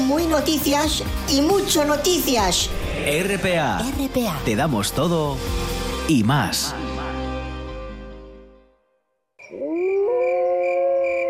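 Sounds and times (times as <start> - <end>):
speech: 0.1 - 6.8
wolf-like howl: 9.4 - 11.2.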